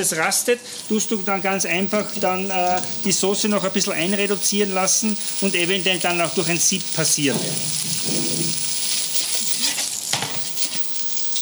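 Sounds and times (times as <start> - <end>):
speech: 0.0 - 8.6
food sizzling in a hot frying pan: 0.7 - 11.3
scraping, stirring and shuffling of food tossed by a professional chef: 6.7 - 11.3.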